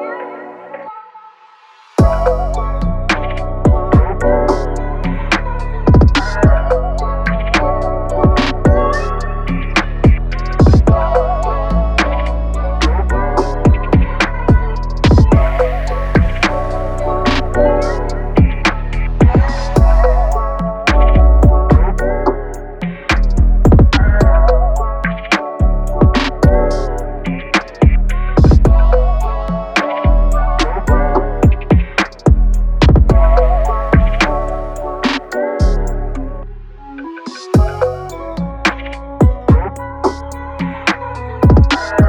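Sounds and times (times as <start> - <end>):
Moog synthesizer shots: 2.0 - 42.0.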